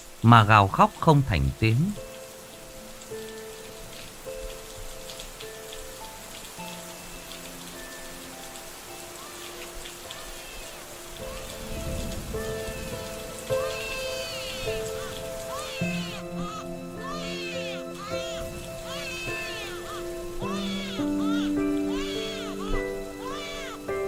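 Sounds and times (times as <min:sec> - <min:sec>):
rain falling on surfaces: 0:00.0 - 0:24.0
speech: 0:00.2 - 0:02.0.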